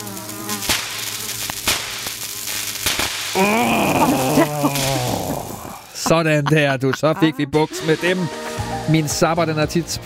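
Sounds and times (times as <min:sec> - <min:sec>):
insects buzzing inside a home: 0:00.0 - 0:06.1
speech: 0:03.4 - 0:03.6, 0:06.1 - 0:10.0
laughter: 0:03.4 - 0:08.3.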